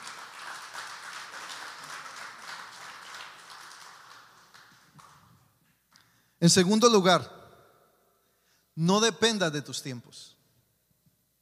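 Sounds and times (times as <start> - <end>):
audience applauding: 0.0 - 5.5
speech: 6.4 - 7.4, 8.8 - 10.4.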